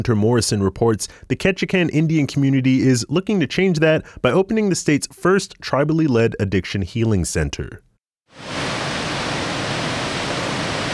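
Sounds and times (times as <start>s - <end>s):
speech: 0.0s - 8.7s
waterfall roaring onto a rocky shoreline in Alaska: 8.4s - 10.9s.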